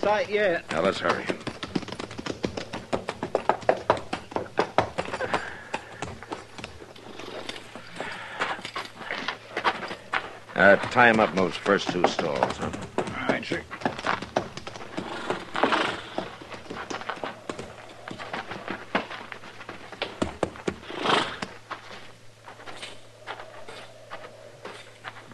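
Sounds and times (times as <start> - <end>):
speech: 0.0 - 1.5, 10.6 - 13.8
horses' hooves clopping on a hard barn floor: 0.0 - 25.3
horse snorting: 14.8 - 17.8, 20.7 - 21.6.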